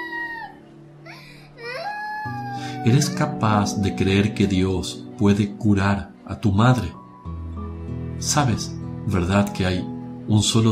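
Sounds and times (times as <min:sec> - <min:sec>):
child crying and sobbing: 0:00.0 - 0:03.7
speech: 0:02.8 - 0:07.0, 0:08.2 - 0:10.7.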